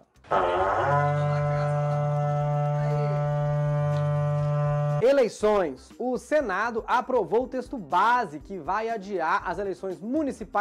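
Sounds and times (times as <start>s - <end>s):
speech: 0.3s - 0.8s, 5.2s - 10.5s
berrante cattle horn blown in a long blast: 0.3s - 5.0s.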